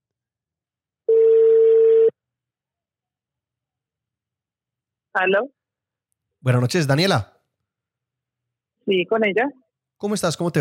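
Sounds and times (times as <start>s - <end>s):
telephone ringback tone: 1.1s - 2.1s
speech: 5.2s - 5.6s, 6.4s - 7.3s, 8.9s - 10.5s.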